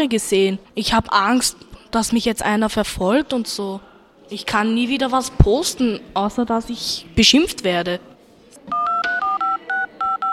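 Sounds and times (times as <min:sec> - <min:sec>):
speech: 0:00.0 - 0:08.1
touch-tone keypad beeps dialing a telephone number: 0:08.7 - 0:10.3.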